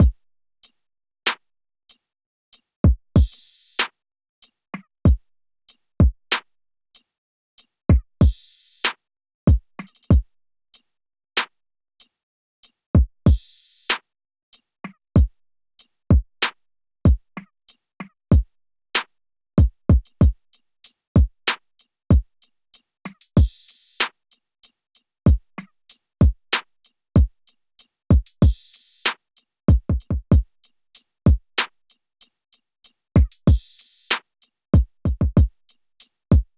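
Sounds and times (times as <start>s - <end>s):
drums at 95 BPM: 2.8s - 4.0s, 4.8s - 5.2s, 6.0s - 6.5s, 7.9s - 10.3s, 13.0s - 14.0s, 14.8s - 15.3s, 16.1s - 17.2s, 18.0s - 20.4s, 21.2s - 22.2s, 23.0s - 24.2s, 25.3s - 31.8s, 33.2s - 36.5s.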